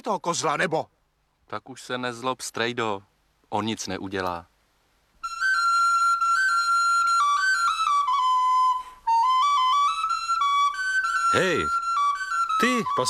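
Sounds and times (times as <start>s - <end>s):
speech: 0.0s - 4.5s, 11.4s - 11.8s, 12.6s - 13.0s
shepherd's pipe playing a shrill reedy melody: 5.2s - 13.0s.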